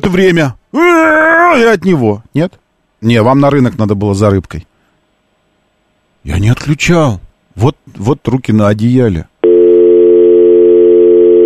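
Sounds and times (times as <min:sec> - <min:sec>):
speech: 0:00.0 - 0:04.7, 0:06.2 - 0:09.3
telephone busy tone after dropped phone call: 0:09.4 - 0:11.4.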